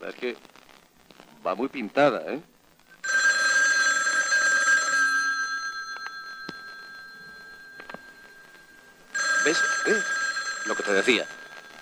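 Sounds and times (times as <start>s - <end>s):
speech: 0.1s - 0.6s, 1.4s - 2.5s, 10.9s - 11.4s
telephone bell ringing: 3.0s - 11.7s.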